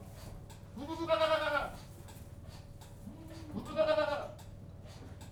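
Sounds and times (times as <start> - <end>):
goat bleating inside a goat house: 0.8 - 1.8, 3.0 - 4.4.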